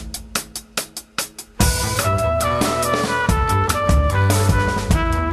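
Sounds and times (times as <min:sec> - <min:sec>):
five-tone scale: 0:01.6 - 0:05.2.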